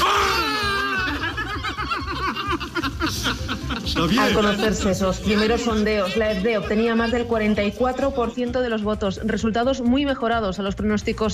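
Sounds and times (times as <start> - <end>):
crowd in euphoric shouting and cheering with whoops: 0.0 - 2.4
laughter: 0.2 - 8.1
speech: 4.0 - 11.3.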